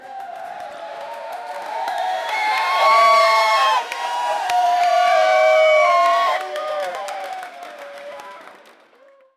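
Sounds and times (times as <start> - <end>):
huge crowd cheering: 0.0 - 9.3.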